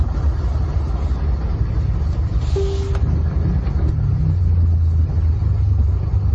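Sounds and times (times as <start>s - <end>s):
passing vehicle engines: 0.0s - 6.3s
road traffic rumble in a pier area: 0.0s - 6.3s.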